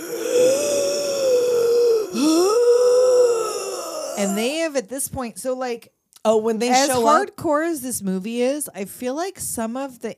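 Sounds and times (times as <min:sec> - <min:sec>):
raspy wheezing breath with a whistling moan-like tone: 0:00.0 - 0:04.4
speech: 0:04.2 - 0:10.1.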